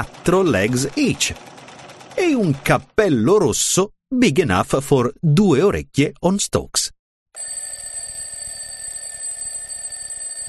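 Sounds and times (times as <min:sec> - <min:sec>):
speech: 0:00.0 - 0:01.5, 0:02.2 - 0:07.6
alarm clock bell ringing: 0:07.4 - 0:10.4.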